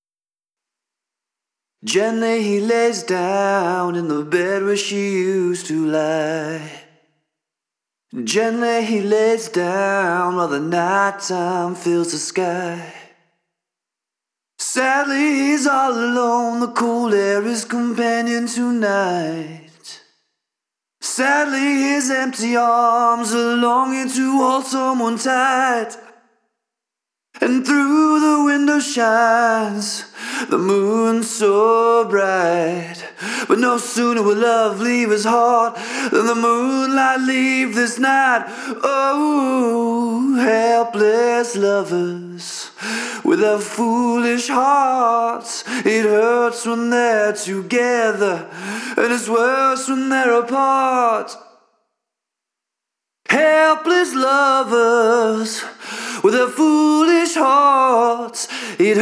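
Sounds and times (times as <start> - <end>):
lead vocal mix: 1.8 - 6.9, 8.1 - 13.1, 14.6 - 20.0, 21.0 - 26.1, 27.4 - 51.4, 53.3 - 59.0.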